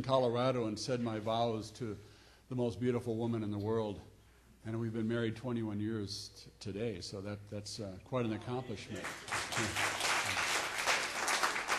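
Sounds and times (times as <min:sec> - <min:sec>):
speech: 0:00.0 - 0:09.9
audience applauding at a Sunday worship service: 0:08.9 - 0:11.7.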